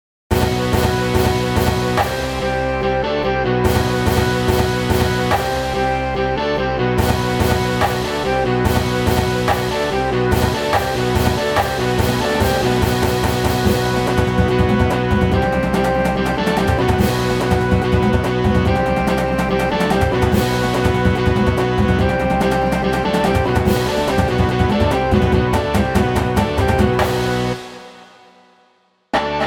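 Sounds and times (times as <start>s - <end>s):
band playing: 0.3s - 28.1s.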